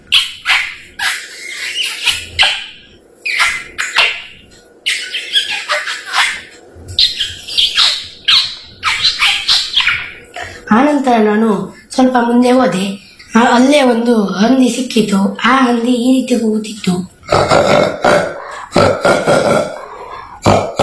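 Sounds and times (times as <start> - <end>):
parrot squawking by the roadside: 0.0 - 10.4, 18.0 - 20.4
speech: 10.7 - 19.6.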